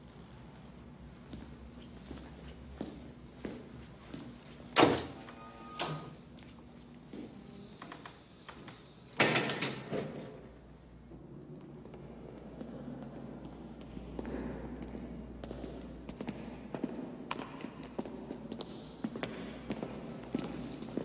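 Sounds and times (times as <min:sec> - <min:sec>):
low room hum: 0:00.0 - 0:21.0
classroom door being shut: 0:04.8 - 0:05.2, 0:09.2 - 0:10.3.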